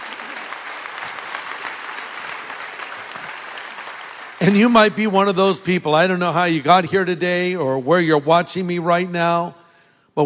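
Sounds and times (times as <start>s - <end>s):
audience applauding: 0.0s - 5.4s
speech: 4.4s - 9.6s.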